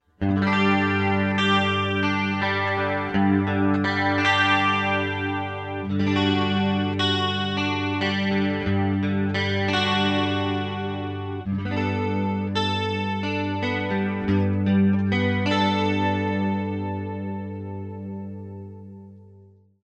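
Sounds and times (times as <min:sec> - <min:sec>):
clean Greco TRS60 electric guitar: 0:00.0 - 0:19.8.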